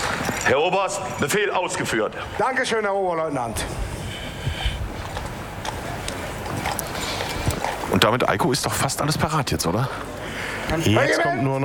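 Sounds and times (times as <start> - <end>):
horse hooves clip-clopping at a walking pace at a regiment's parade: 0.0 - 1.3, 4.3 - 9.1
speech: 0.5 - 3.9, 8.0 - 11.6.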